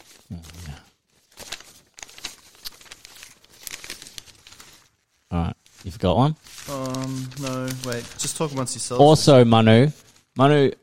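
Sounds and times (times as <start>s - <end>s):
paper crinkling and crumpling: 0.0s - 10.5s
speech: 5.4s - 10.8s.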